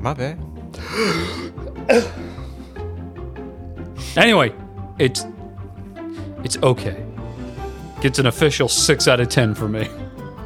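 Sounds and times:
speech: 0.0s - 2.4s, 4.1s - 5.4s, 6.4s - 7.1s, 8.0s - 10.0s
weak cough: 1.1s - 2.3s.

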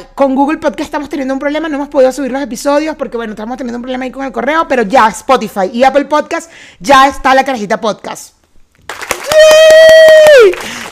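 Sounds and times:
speech: 0.0s - 10.8s
sharp loud hand claps close to microphone: 8.8s - 10.9s.

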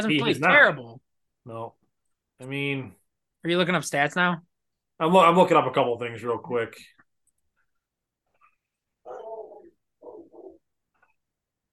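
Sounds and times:
speech: 0.0s - 1.8s, 2.4s - 7.0s
dog whimpering softly: 9.0s - 10.6s.

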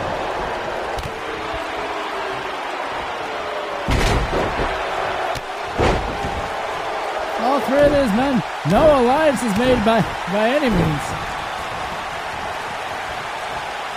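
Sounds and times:
roaring wrestling arena crowd: 0.0s - 13.9s
thuds and sharp impacts in a wrestling ring: 3.9s - 4.8s, 5.7s - 6.5s
wrestler knocked down onto ring mat by a clothesline: 3.9s - 4.8s, 5.7s - 6.6s
speech: 7.7s - 11.3s.

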